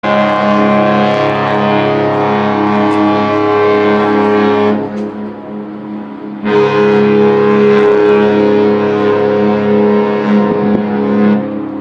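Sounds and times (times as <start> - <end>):
ship horn ringtone: 0.0 - 11.8.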